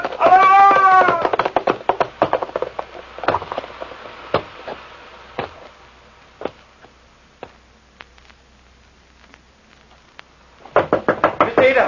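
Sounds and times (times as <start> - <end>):
wailing cry: 0.0 - 1.4
knocking on a door: 10.7 - 11.8.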